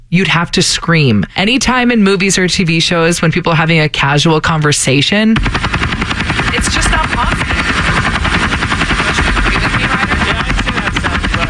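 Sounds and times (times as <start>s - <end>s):
speech: 0.1s - 7.5s
helicopter rotor and engine: 5.4s - 11.4s.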